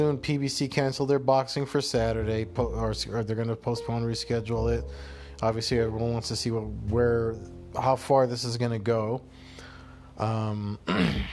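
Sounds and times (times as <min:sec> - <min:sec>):
speech: 0:00.0 - 0:09.4, 0:10.2 - 0:11.3
throat clearing: 0:10.8 - 0:11.3.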